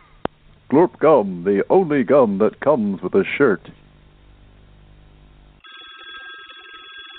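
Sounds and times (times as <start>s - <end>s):
speech: 0.7s - 3.8s
telephone ringing with an incoming call: 5.6s - 7.1s.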